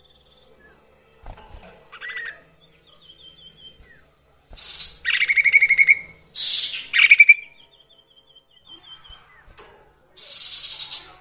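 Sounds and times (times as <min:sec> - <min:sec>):
sirtu songbird song with chirps, whistle and pulsed trill: 0:00.0 - 0:11.1.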